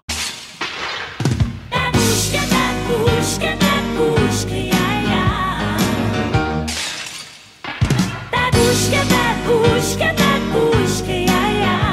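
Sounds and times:
sampled glass shattering: 0:00.1 - 0:01.5, 0:06.6 - 0:08.3
musical backing: 0:01.2 - 0:06.8, 0:07.7 - 0:11.9
sampled dishes breaking: 0:06.7 - 0:08.2.

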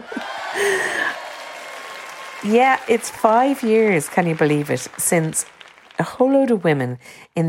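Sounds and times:
whoops rising above the crowd: 0:00.0 - 0:03.3
crowd cheering: 0:00.0 - 0:06.5
speech: 0:00.6 - 0:01.2, 0:02.4 - 0:07.4.

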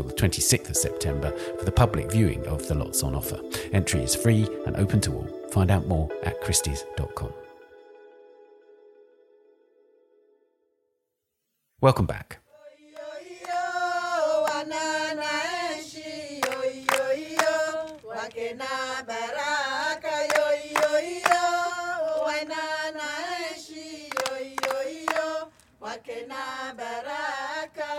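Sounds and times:
speech: 0:00.0 - 0:07.4, 0:11.8 - 0:12.4
choir of Comorian women singing in Marseille, France: 0:12.5 - 0:27.9.

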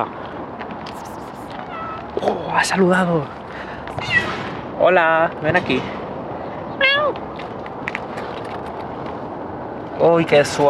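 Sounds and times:
speech: 0:00.0 - 0:00.2, 0:02.2 - 0:06.0, 0:07.1 - 0:07.3, 0:10.0 - 0:10.6
domestic cat meowing: 0:01.0 - 0:02.2, 0:04.0 - 0:04.4, 0:06.8 - 0:07.2.

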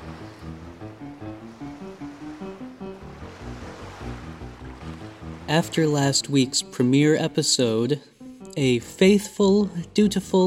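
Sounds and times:
rising flood water surging in rolling waves: 0:00.0 - 0:07.3
low tonal drone of music: 0:00.0 - 0:10.4
speech: 0:05.5 - 0:10.4.

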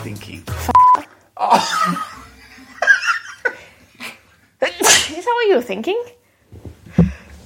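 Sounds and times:
speech: 0:00.0 - 0:02.1, 0:05.5 - 0:06.2
sudden forceful sneeze: 0:04.7 - 0:05.3.

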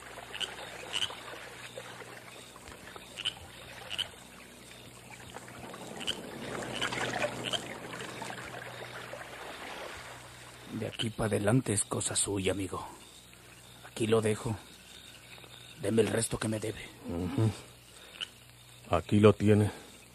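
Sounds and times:
moving river water: 0:00.0 - 0:10.8
oars dipping and splashing as a canoe is rowed across a river at night: 0:00.0 - 0:11.3
speech: 0:10.9 - 0:13.0, 0:14.0 - 0:14.7, 0:15.8 - 0:17.7, 0:18.9 - 0:19.8.

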